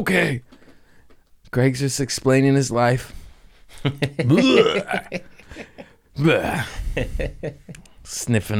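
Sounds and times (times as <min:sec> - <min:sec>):
speech: 0:00.0 - 0:00.5, 0:01.5 - 0:03.2, 0:03.8 - 0:08.5
short grunt: 0:04.3 - 0:05.0, 0:06.2 - 0:06.8
voice imitating gagging and retching: 0:04.3 - 0:05.1, 0:06.2 - 0:06.8.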